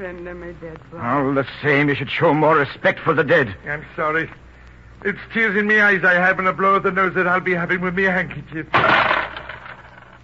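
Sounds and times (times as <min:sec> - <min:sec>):
speech: 0:00.0 - 0:04.4, 0:05.0 - 0:09.1
coins clattering on a hard floor: 0:08.8 - 0:10.2.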